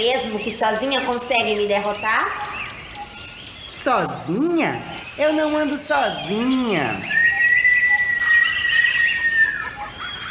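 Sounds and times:
speech: 0:00.0 - 0:02.5, 0:03.8 - 0:07.1
birds chirping and calling in a forest: 0:00.0 - 0:10.2
steady high whistling tone: 0:06.1 - 0:09.7.

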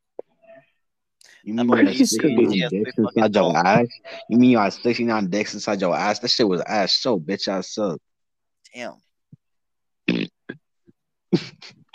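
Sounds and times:
speech: 0:01.4 - 0:08.1, 0:08.7 - 0:09.0, 0:11.3 - 0:11.9
man trying to fart: 0:10.0 - 0:10.6.

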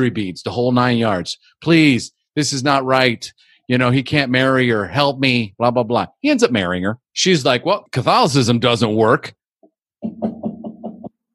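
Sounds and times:
speech: 0:00.0 - 0:09.4, 0:10.0 - 0:10.3
firm knocks on a door: 0:10.0 - 0:11.1.

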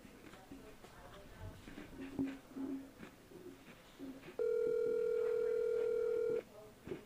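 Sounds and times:
loud steady electronic phone ringing tone: 0:04.4 - 0:06.4.

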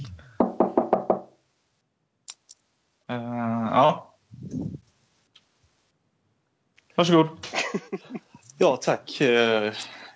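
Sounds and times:
knocking on an office door: 0:00.4 - 0:01.3
speech: 0:03.1 - 0:04.1, 0:07.0 - 0:10.0
laughter: 0:07.4 - 0:08.5.

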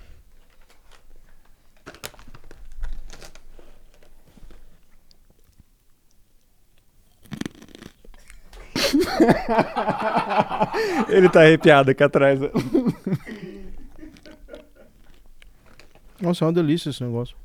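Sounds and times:
crisp snack being chewed at the microphone: 0:01.8 - 0:08.6, 0:13.4 - 0:16.2
laughter: 0:08.5 - 0:15.0
speech: 0:09.1 - 0:13.4, 0:16.2 - 0:17.4.

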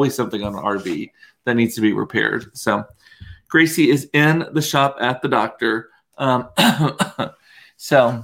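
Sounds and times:
speech: 0:00.0 - 0:08.2
harsh coughs and throat clearing from ragweed pollen: 0:06.5 - 0:07.4.

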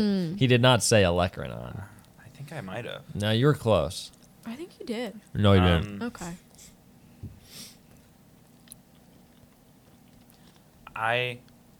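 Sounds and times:
speech: 0:00.0 - 0:01.9, 0:02.5 - 0:06.4, 0:11.0 - 0:11.5
person chewing mac and cheese: 0:07.9 - 0:10.7.

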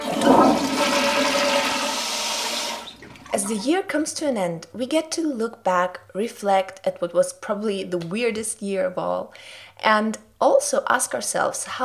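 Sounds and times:
toilet flushing: 0:00.0 - 0:03.9
speech: 0:03.5 - 0:11.8.

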